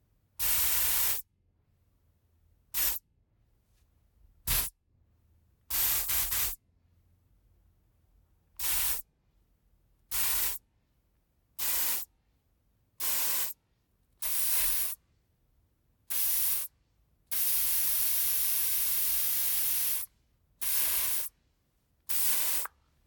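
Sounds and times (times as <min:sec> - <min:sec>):
deodorant spray: 0:00.4 - 0:01.2, 0:02.8 - 0:03.0, 0:04.5 - 0:04.7, 0:05.7 - 0:06.6, 0:08.6 - 0:09.1, 0:10.1 - 0:10.6, 0:11.6 - 0:12.1, 0:13.0 - 0:13.6, 0:14.2 - 0:15.0, 0:16.1 - 0:16.7, 0:17.3 - 0:21.3, 0:22.1 - 0:22.8.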